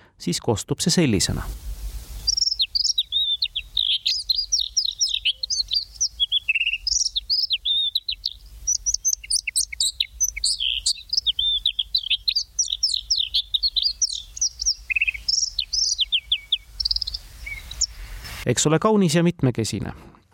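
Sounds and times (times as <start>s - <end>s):
speech: 0.2s - 1.8s, 18.6s - 20.2s
red-backed shrike singing high chirps, chatters and warbling notes: 2.1s - 18.0s.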